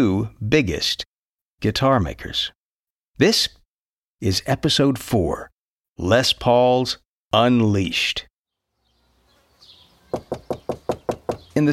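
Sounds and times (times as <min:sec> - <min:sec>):
speech: 0:00.0 - 0:02.6, 0:03.2 - 0:03.6, 0:04.2 - 0:08.3, 0:10.1 - 0:10.5, 0:11.6 - 0:11.7
knocks on the wooden front door of a house in New Jersey: 0:10.1 - 0:11.6.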